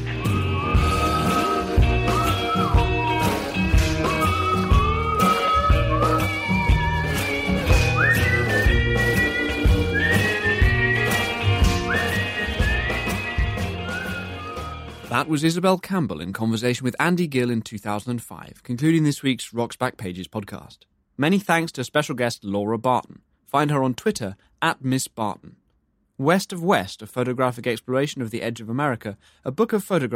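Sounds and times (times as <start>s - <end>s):
steady rhythmic backing of drums and bass: 0.0s - 15.3s
whistled melody with sliding wavering notes: 0.0s - 15.3s
speech: 15.3s - 25.6s, 26.2s - 30.1s.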